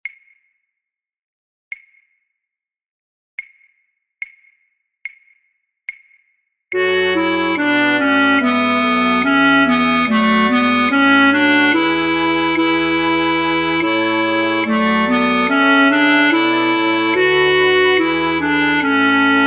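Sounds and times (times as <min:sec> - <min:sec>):
alto flute playing for a practice track: 0:06.8 - 0:19.4.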